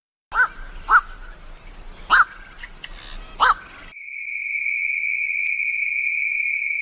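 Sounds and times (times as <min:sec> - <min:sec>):
night bird cawing: 0:00.3 - 0:03.9
high-pitched insect-like drone: 0:03.0 - 0:06.7.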